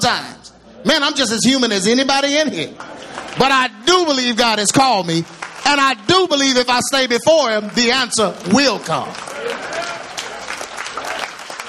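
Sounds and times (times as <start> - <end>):
speech: 0.0 - 9.8
crowd applauding: 2.8 - 11.6.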